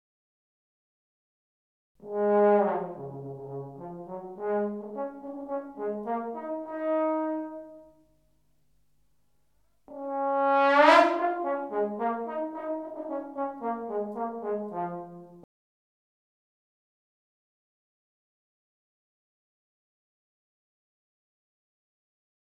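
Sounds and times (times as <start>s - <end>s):
trombone glissando: 2.0s - 7.9s, 9.9s - 15.4s.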